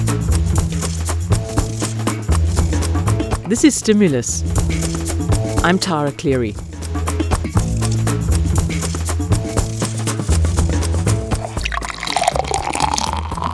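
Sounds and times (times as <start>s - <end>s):
rhythmic bass-heavy backing music: 0.0s - 13.5s
speech: 3.5s - 4.9s, 5.6s - 6.7s
craft beer pouring into a glass: 11.4s - 13.5s.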